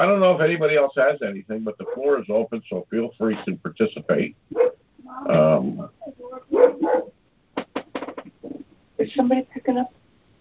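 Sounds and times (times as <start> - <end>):
speech: 0.0 - 6.0, 9.0 - 10.0
dog barking at home at someone at the door: 1.8 - 2.2, 4.5 - 4.8, 6.5 - 7.2.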